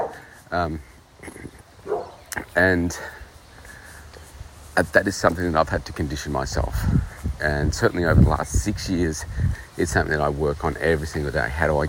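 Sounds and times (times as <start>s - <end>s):
dog barking: 0.0s - 0.2s, 1.8s - 2.2s
speech: 0.5s - 1.6s, 2.6s - 3.2s, 4.8s - 11.8s.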